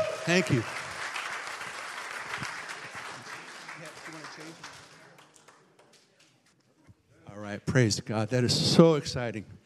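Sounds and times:
crowd applauding after a baptism: 0.0 - 6.3
speech: 0.3 - 0.8, 7.7 - 9.6.

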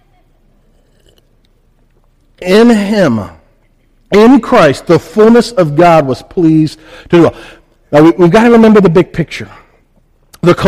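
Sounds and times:
low hum: 0.0 - 10.6
person sipping water: 0.6 - 2.3
speech: 2.4 - 3.4, 4.1 - 9.6, 10.4 - 10.6.

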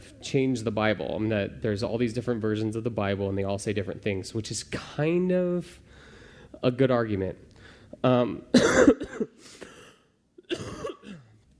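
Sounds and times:
speech: 0.2 - 5.9, 6.6 - 9.3
person coughing: 8.5 - 11.4.

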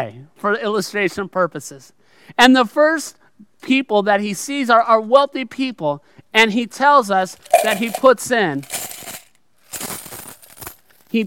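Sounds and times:
speech: 0.0 - 9.0
coins dropping into an offering container: 7.4 - 11.2.

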